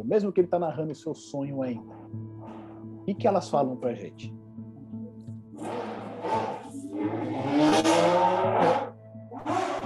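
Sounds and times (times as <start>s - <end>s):
speech: 0.0s - 2.1s, 3.1s - 4.4s
motorcycle engine revving and accelerating past outside: 5.6s - 9.8s.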